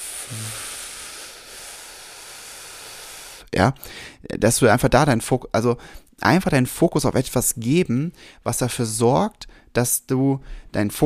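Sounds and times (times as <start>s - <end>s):
voice imitating an air conditioner hiss: 0.0s - 3.5s
speech: 3.5s - 11.0s.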